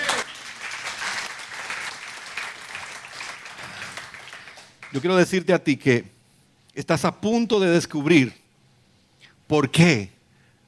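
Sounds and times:
audience applauding: 0.0 - 5.1
speech: 4.9 - 6.1, 6.8 - 8.4, 9.5 - 10.2.

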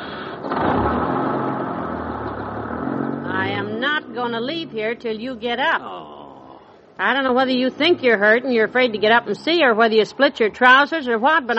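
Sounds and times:
large bus engine idling: 0.0 - 5.8
speech: 4.2 - 6.1, 7.0 - 11.5.

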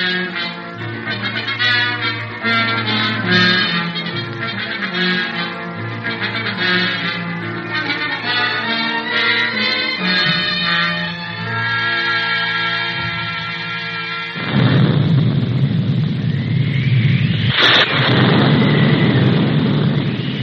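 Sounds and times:
sustained tonal music: 0.0 - 14.5
deep rolling thunder from an oncoming storm: 14.4 - 20.4.

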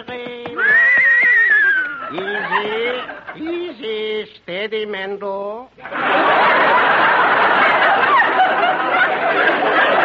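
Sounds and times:
rented riding academy horse whinnying: 0.6 - 2.1
laughter: 0.6 - 4.0, 5.8 - 10.0
speech: 2.1 - 10.0.

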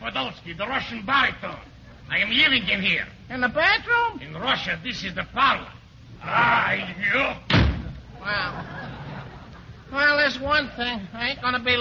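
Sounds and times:
speech: 0.1 - 7.6, 8.2 - 8.8, 9.9 - 11.7
door slamming shut: 7.5 - 8.0
laughter: 8.1 - 10.0.

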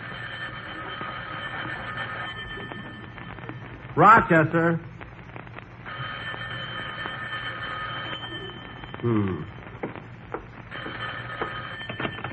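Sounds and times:
old-fashioned telephone bell ringing in a house in Beverly Hills: 0.0 - 3.4, 5.9 - 9.0, 10.7 - 12.3
speech: 4.0 - 4.9, 9.0 - 9.5
brief vocal sound: 9.0 - 9.5.

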